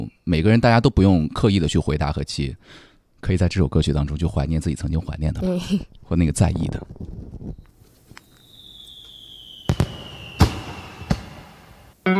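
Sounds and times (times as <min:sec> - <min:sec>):
speech: 0:00.3 - 0:07.1
long falling firework whistle at a New Year celebration: 0:08.2 - 0:12.0.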